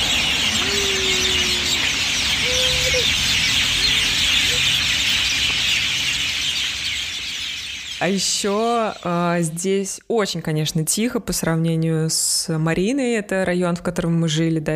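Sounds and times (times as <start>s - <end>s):
loud dense evening chorus of many birds singing and chattering: 0.0s - 10.0s
speech: 8.0s - 14.7s.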